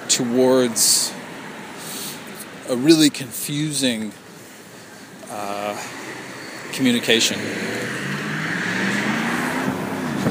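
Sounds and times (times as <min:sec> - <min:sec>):
continuous rumble of passing road traffic: 0:00.0 - 0:10.2
speech: 0:00.2 - 0:01.0, 0:02.7 - 0:04.2, 0:05.3 - 0:06.0, 0:06.7 - 0:08.2.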